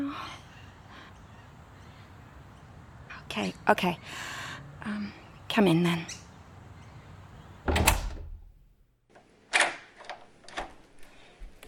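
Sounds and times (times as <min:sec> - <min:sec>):
speech: 0:03.4 - 0:06.2
door swinging shut with a solid thud: 0:07.6 - 0:08.6.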